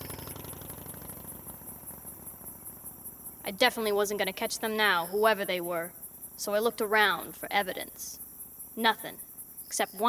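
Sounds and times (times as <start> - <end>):
motorcycle engine starting and driving off: 0.0 - 3.5
speech: 3.5 - 8.2, 8.8 - 10.0.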